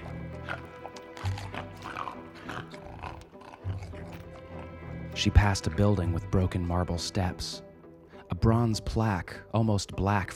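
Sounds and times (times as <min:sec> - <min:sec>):
stumbling mutant creatures making wet guttural gurgling noises: 0:00.0 - 0:04.9
speech: 0:05.2 - 0:07.7, 0:08.3 - 0:10.3.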